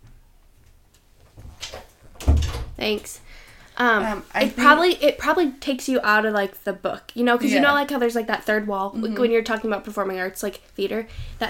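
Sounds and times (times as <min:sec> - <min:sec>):
door creaking as it swings shut: 0:01.5 - 0:02.9
door landing shut with a firm low thud: 0:02.2 - 0:02.8
speech: 0:02.8 - 0:03.2, 0:03.8 - 0:11.4.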